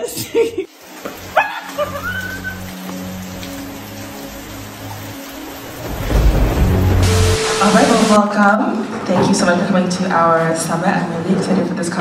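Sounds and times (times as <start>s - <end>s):
steady rain hissing: 0.7s - 8.5s
deep rolling thunder rumble: 5.7s - 9.6s
speech: 7.6s - 11.9s.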